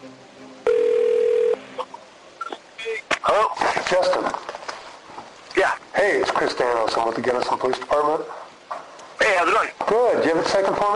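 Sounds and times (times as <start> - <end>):
telephone dialing tone: 0.7 - 1.6
speech: 3.2 - 4.5, 5.6 - 8.4, 9.4 - 10.9.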